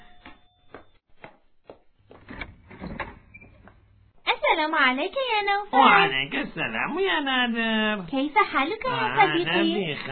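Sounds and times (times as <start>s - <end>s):
door opening with scraping rattle: 2.2s - 3.8s
speech: 4.6s - 10.1s.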